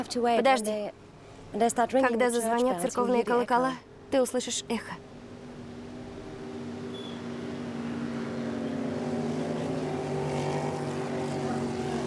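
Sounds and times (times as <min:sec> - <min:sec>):
speech: 0:00.0 - 0:05.1
motorboat engine droning: 0:05.1 - 0:12.0.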